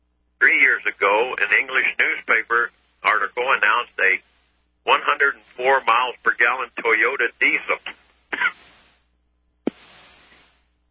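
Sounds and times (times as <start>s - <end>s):
speech: 0.4s - 8.6s
sharp harsh coughs with breathy rasp: 8.3s - 8.7s.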